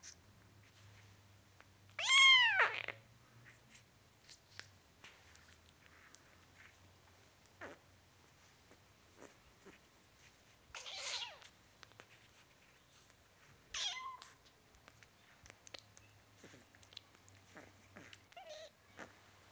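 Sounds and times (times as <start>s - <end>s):
soft background noise: 0.0s - 19.5s
four-week-old kitten meowing: 2.0s - 2.9s, 13.8s - 14.4s.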